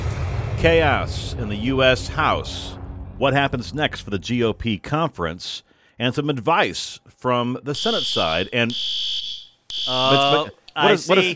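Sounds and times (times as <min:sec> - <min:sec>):
speech: 0:00.6 - 0:11.3
pulled fire alarm sounding a steady high electronic tone: 0:07.8 - 0:10.5
person speaking loudly and excitedly: 0:09.9 - 0:11.3.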